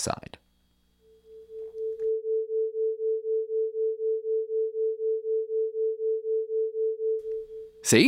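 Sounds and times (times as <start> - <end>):
speech: 0.0 - 0.4, 7.8 - 8.0
two sine tones forming binaural beats: 1.0 - 7.8.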